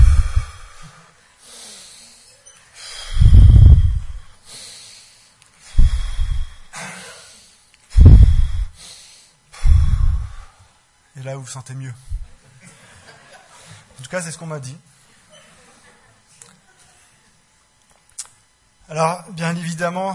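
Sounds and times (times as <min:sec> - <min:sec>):
deep breaths in and out through the nose: 0:00.0 - 0:10.8, 0:12.1 - 0:12.4
speech: 0:11.3 - 0:12.2, 0:14.1 - 0:15.0, 0:18.9 - 0:20.1.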